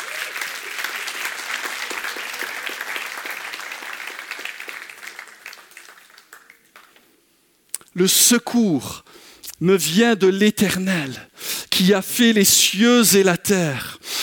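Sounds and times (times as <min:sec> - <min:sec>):
church congregation clapping during a worship service: 0:00.0 - 0:07.2
speech: 0:08.0 - 0:09.0, 0:09.6 - 0:14.0.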